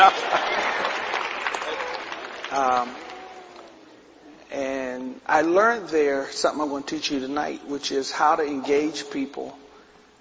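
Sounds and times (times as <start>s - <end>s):
speech: 0.0s - 0.9s, 2.5s - 3.0s, 5.3s - 9.6s
large group applauding: 0.0s - 3.8s
person calling out: 2.7s - 3.9s.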